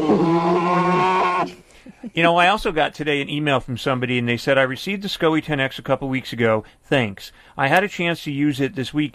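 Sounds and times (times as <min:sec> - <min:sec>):
badger wailing call: 0:00.0 - 0:01.6
speech: 0:02.1 - 0:09.1.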